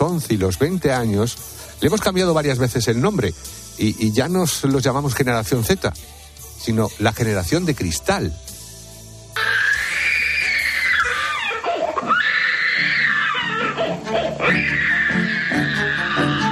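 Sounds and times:
speech: 0.0 - 8.4
child screaming in a tantrum: 9.4 - 16.4.

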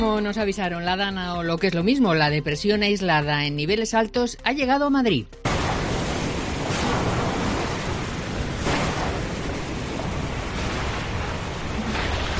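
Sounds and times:
speech: 0.0 - 5.6
heavy rain falling: 5.5 - 12.3.

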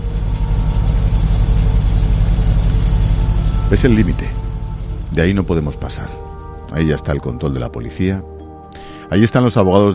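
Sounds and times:
emergency relief electric generator running at a police checkpoint: 0.0 - 7.8
speech: 3.7 - 4.4, 5.1 - 8.3, 9.1 - 9.9.

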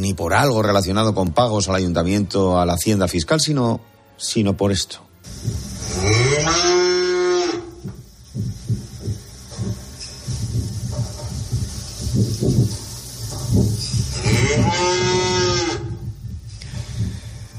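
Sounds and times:
speech: 0.0 - 6.8
low rumbling and thumping noises: 5.3 - 6.8, 7.7 - 17.5
cow mooing: 5.8 - 7.8, 14.2 - 16.0.

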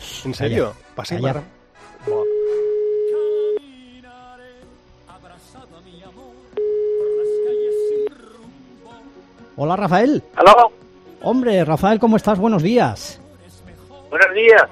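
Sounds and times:
speech: 0.2 - 2.4, 9.6 - 13.2, 14.1 - 14.7
electronic telephone ringback tone of a phone call: 2.1 - 3.6, 6.6 - 8.1.

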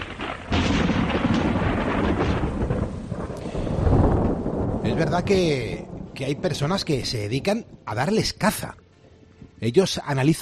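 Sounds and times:
steady hiss of rain: 0.0 - 7.5
deep rolling thunder: 0.0 - 7.8
speech: 5.0 - 8.8, 9.6 - 10.4.

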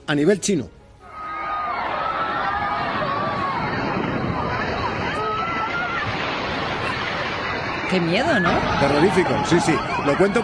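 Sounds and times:
speech: 0.1 - 0.8, 7.9 - 10.4
crowd of people shouting and screaming in a swimming pool: 1.0 - 10.4
giant wave surging through crowded swimming pool: 2.1 - 10.4.

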